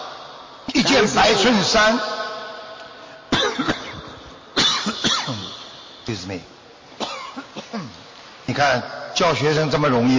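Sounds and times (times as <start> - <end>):
speech: 1.0 - 2.2, 6.2 - 6.6, 8.6 - 10.1
sharp coughs: 3.3 - 5.6, 7.0 - 8.0.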